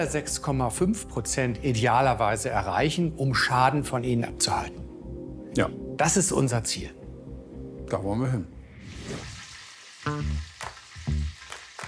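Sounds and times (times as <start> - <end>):
speech: 0.0 - 4.9, 5.6 - 7.0, 7.9 - 9.3, 10.0 - 10.5
food sizzling in a frying pan at home in Winsen an der Lohe: 8.8 - 11.8.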